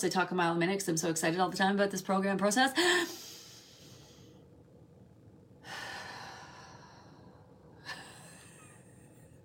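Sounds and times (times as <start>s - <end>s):
speech: 0.0s - 3.3s
slow deep breathing exercise: 2.8s - 4.5s, 5.6s - 8.6s.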